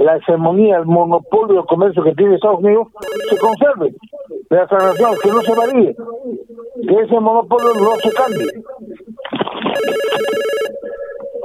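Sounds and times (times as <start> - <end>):
speech: 0.0 - 8.7, 9.7 - 10.5
telephone ringing with an incoming call: 3.0 - 3.6, 4.8 - 5.8, 7.6 - 8.6, 9.8 - 10.9.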